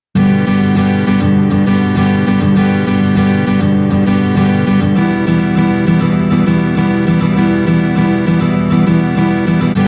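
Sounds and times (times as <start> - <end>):
guitar playing a sixteen-beat rhythm: 0.2 - 9.8.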